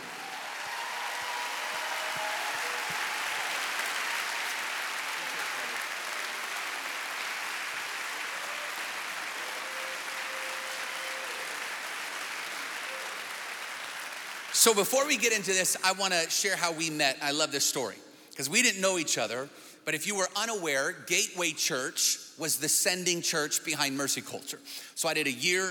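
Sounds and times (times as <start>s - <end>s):
church crowd applauding to welcome a guest: 0.0s - 15.2s
speech: 14.6s - 25.6s.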